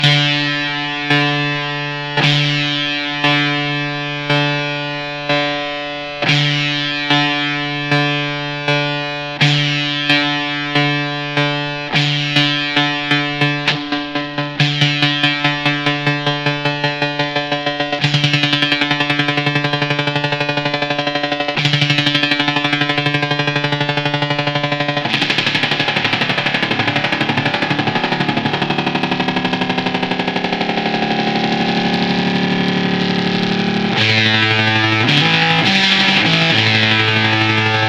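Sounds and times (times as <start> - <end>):
electric guitar with single-coil pickups and tremolo effect: 0.0 - 37.8.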